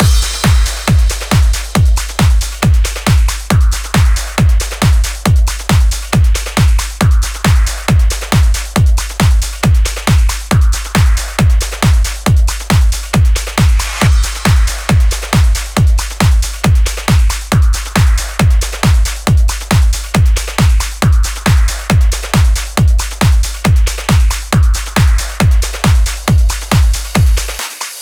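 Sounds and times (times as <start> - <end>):
drum and percussion mix: 0.0 - 28.0.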